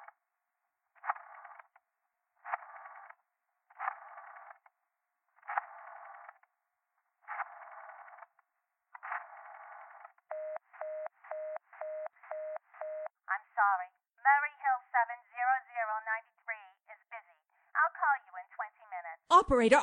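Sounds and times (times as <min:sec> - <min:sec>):
telephone number being dialed with short electronic beeps: 0:10.3 - 0:13.2
people talking: 0:13.3 - 0:19.8.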